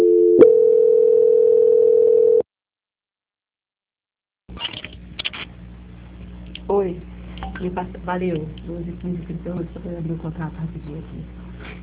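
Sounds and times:
telephone line tone during a call transfer: 0:00.0 - 0:02.4
speech: 0:06.8 - 0:11.4.

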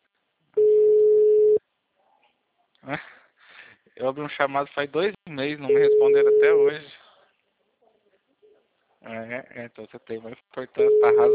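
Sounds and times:
telephone line tone while placing a call: 0:00.6 - 0:01.6, 0:10.8 - 0:11.3
speech: 0:04.0 - 0:07.0, 0:09.0 - 0:11.3.

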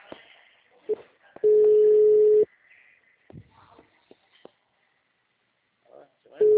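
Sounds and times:
ringback tone of an unanswered phone call: 0:01.4 - 0:02.4.

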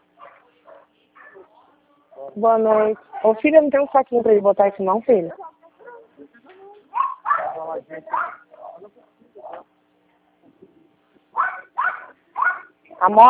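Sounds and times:
dog barking nervously at a dog passing in the street: 0:00.2 - 0:01.5, 0:05.8 - 0:06.1, 0:06.9 - 0:08.8, 0:11.3 - 0:12.8
speech: 0:02.3 - 0:05.4, 0:07.8 - 0:08.4, 0:13.0 - 0:13.2.

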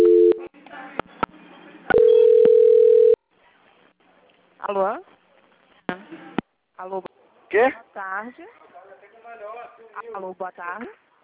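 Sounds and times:
telephone tones during a call transfer on a bank quality-control call: 0:01.9 - 0:03.2
speech: 0:04.7 - 0:05.1, 0:06.1 - 0:08.6, 0:09.3 - 0:11.0.

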